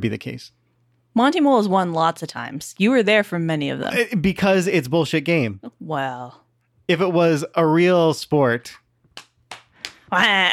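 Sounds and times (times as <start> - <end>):
speech: 0.0 - 0.6, 1.2 - 8.8, 10.1 - 10.5
hand slapping a belly: 9.1 - 10.1.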